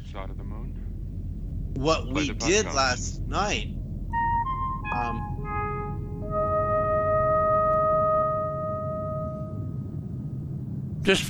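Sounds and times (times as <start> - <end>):
low rumble: 0.0 - 11.2
speech: 1.8 - 3.8, 5.0 - 5.4, 11.0 - 11.2
electronic signaling tones used for signaling at Devil's Tower Wyoming: 4.1 - 9.9.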